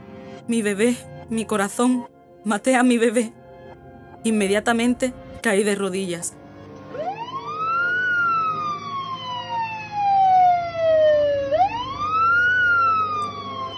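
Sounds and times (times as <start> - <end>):
speech: 0.5 - 3.4, 4.2 - 6.4
emergency siren wailing: 6.6 - 13.7.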